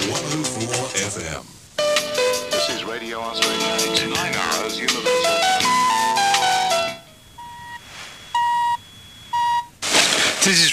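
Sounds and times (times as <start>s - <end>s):
bright melodic jingle on an FM radio station in Fiji: 0.0s - 9.0s
radio top-of-the-hour electronic time signal pips: 6.9s - 9.7s.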